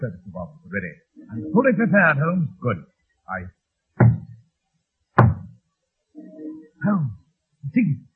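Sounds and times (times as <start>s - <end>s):
speech: 0.0s - 1.0s, 1.6s - 4.2s, 6.2s - 8.1s
heavy hollow knocks on a wooden door: 5.2s - 5.5s.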